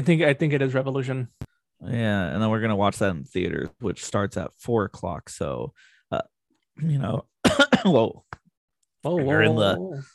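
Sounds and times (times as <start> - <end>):
speech: 0.0 - 8.4, 9.0 - 10.1
person clearing throat: 7.4 - 8.0
person coughing: 7.4 - 8.0.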